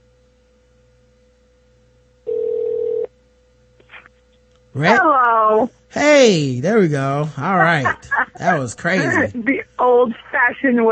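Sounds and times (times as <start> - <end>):
ringback tone from an outgoing phone call to a mobile number: 2.3 - 3.1
speech: 4.7 - 10.9
laughter: 6.0 - 9.5.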